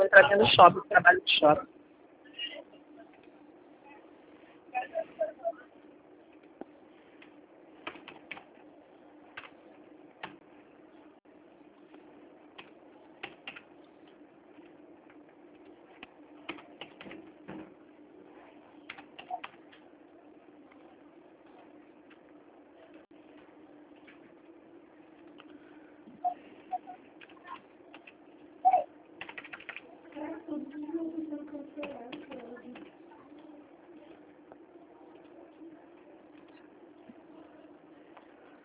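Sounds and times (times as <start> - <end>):
low steady hum: 0.0 - 38.6
speech: 0.2 - 1.8
typing a contract on a computer keyboard: 7.8 - 8.5, 12.6 - 13.7, 16.0 - 17.2, 18.9 - 19.8, 29.2 - 29.8.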